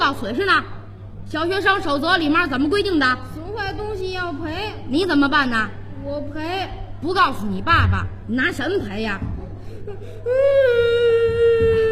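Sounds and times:
speech: 0.1s - 11.9s
child crying: 9.8s - 11.9s.

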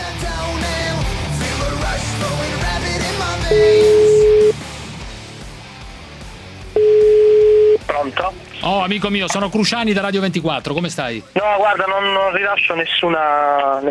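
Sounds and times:
continuous music bed: 0.0s - 13.8s
speech: 3.5s - 3.8s, 8.9s - 13.8s
Italian telephone ringback tone beeps: 3.5s - 4.6s, 6.8s - 7.8s.

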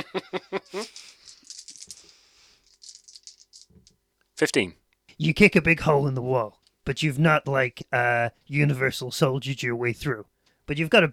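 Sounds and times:
laughter: 0.0s - 1.2s
speech: 0.2s - 1.0s, 4.4s - 11.1s
dice rolled clattering across a hard surface: 0.8s - 3.9s.

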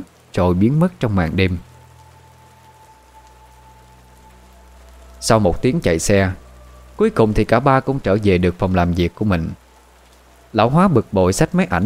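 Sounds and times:
heavy rain falling at night: 0.0s - 11.8s
speech: 0.4s - 1.7s, 5.2s - 6.4s, 7.0s - 9.6s, 10.5s - 11.8s
low rumble: 1.0s - 11.2s
faint steady tone: 1.0s - 11.8s.

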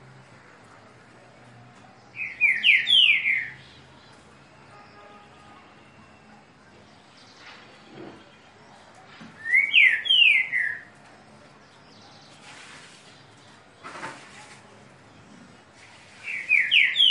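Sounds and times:
low background noise: 0.0s - 17.1s
Green-winged saltator giving bright falling whistles: 2.2s - 3.6s, 9.4s - 10.9s, 16.3s - 17.1s.

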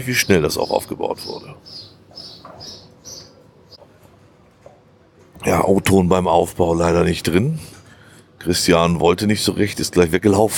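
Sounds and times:
speech: 0.0s - 1.9s, 5.4s - 7.7s, 8.4s - 10.5s
birds squawking overhead while being fed: 0.0s - 3.8s.

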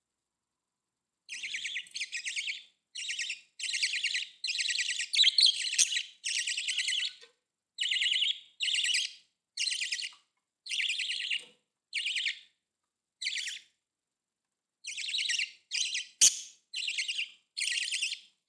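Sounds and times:
budgerigar chirping: 1.3s - 7.2s, 7.8s - 12.5s, 13.2s - 13.7s, 14.8s - 18.3s.

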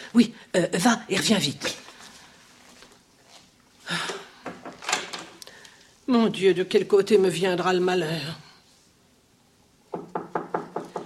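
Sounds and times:
speech: 0.1s - 1.8s, 6.1s - 8.5s
knocking on a door: 9.9s - 11.0s.

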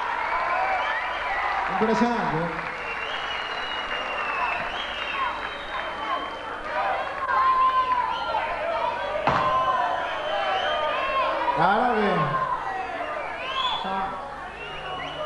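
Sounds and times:
crowd shouts: 0.0s - 1.7s, 4.2s - 15.2s
audience applause at a 1998 live concert in a theater: 0.0s - 15.2s
audience whistling: 0.1s - 1.6s, 2.6s - 6.5s, 7.6s - 8.6s, 9.3s - 11.3s, 12.7s - 15.2s
speech: 1.7s - 2.8s.

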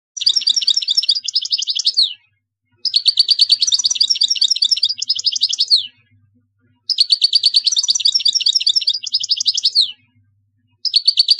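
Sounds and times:
European goldfinch singing: 0.2s - 6.1s, 6.8s - 11.3s.

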